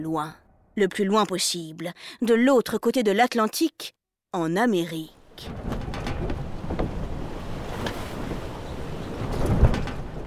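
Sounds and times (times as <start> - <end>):
speech: 0.0 - 5.8
ocean waves during a sea crossing: 5.0 - 10.2
wind noise at sea: 5.3 - 10.2.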